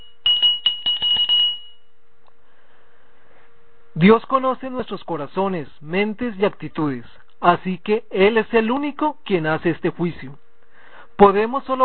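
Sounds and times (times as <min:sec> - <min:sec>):
hand bell shaken rapidly: 0:00.0 - 0:01.9
speech: 0:04.0 - 0:10.4, 0:11.2 - 0:11.8.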